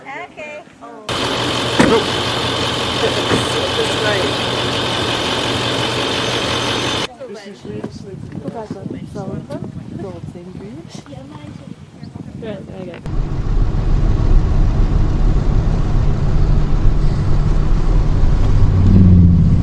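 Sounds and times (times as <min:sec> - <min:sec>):
vehicle towing a travel trailer and a boat passing: 0:01.1 - 0:07.1, 0:13.1 - 0:19.6
people talking: 0:01.8 - 0:02.1, 0:03.0 - 0:04.4, 0:07.0 - 0:13.1.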